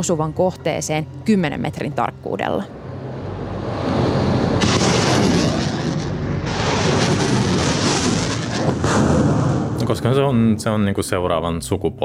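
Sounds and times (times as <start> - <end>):
speech: 0.0 - 2.8, 9.9 - 12.0
low rumble: 2.1 - 10.6
American HIMARS rocket launcher firing: 4.6 - 9.8.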